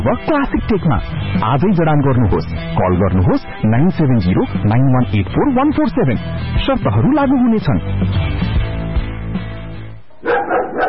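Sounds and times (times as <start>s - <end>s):
speech: 0.0s - 8.4s
aggressive drooling dog barking: 10.1s - 10.8s.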